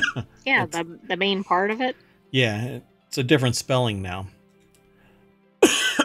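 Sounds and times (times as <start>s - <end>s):
harsh cough: 0.0s - 0.3s, 5.6s - 6.0s
speech: 0.2s - 4.4s.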